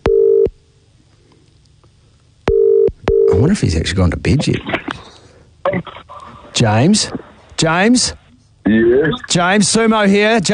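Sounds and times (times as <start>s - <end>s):
outgoing phone call ringing tone: 0.0s - 0.5s, 2.5s - 3.4s
speech: 3.4s - 5.1s, 6.6s - 8.2s, 8.9s - 10.5s.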